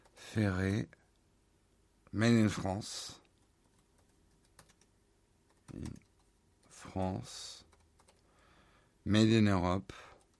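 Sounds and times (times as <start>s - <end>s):
speech: 0.4s - 1.0s, 2.1s - 3.2s, 5.7s - 6.0s, 6.8s - 7.6s, 9.0s - 10.1s
keystrokes on a computer keyboard: 3.6s - 4.9s, 5.5s - 6.7s, 7.6s - 8.2s, 10.1s - 10.3s.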